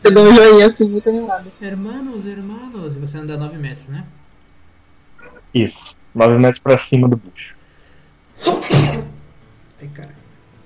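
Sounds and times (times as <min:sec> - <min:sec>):
speech: 0:00.0 - 0:04.2, 0:05.5 - 0:07.5, 0:08.4 - 0:09.1, 0:09.8 - 0:10.2
person sneezing: 0:08.4 - 0:09.2.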